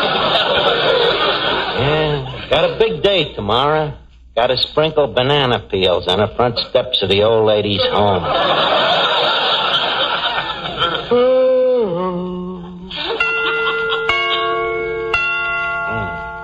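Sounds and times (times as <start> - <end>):
laughter: 0.0 - 3.0, 7.7 - 11.4, 12.7 - 14.6
speech: 1.8 - 9.5
clock chimes striking the hour: 13.1 - 16.4.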